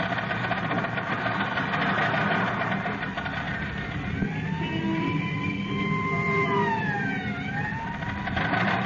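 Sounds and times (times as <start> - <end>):
car engine rumbling: 0.0 - 8.8
ambulance siren wailing: 3.4 - 8.8.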